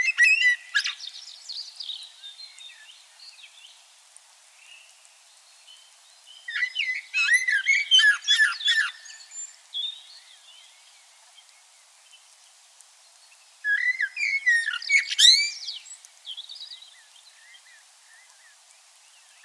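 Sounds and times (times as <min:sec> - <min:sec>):
common blackbird singing: 0:00.0 - 0:03.6, 0:06.3 - 0:10.9, 0:13.6 - 0:18.5.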